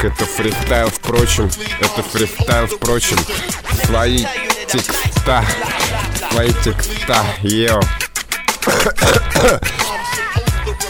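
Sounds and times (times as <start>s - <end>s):
speech: 0.0s - 8.0s, 8.6s - 9.9s
strained raspy vocal noise: 0.0s - 10.4s
laughter: 3.1s - 7.2s
harsh coughing: 8.5s - 10.0s
throat clearing: 8.6s - 9.9s.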